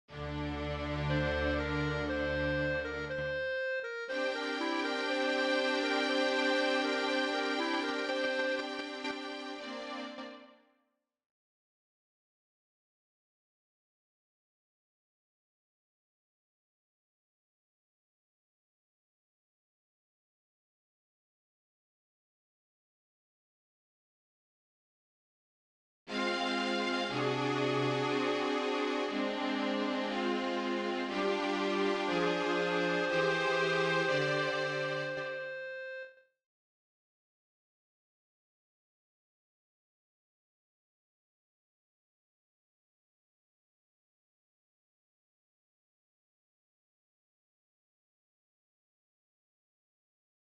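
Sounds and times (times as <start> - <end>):
clarinet: 0.1 - 10.6, 26.1 - 36.2.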